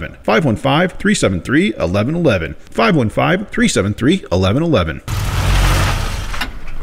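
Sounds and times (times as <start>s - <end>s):
speech: 0.0s - 5.2s
fuel pumping into a car's gas tank at a pump: 5.1s - 6.7s.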